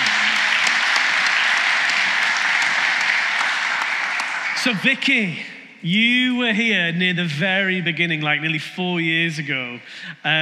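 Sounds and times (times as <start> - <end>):
audience applause: 0.0 - 5.1
speech: 4.6 - 10.4.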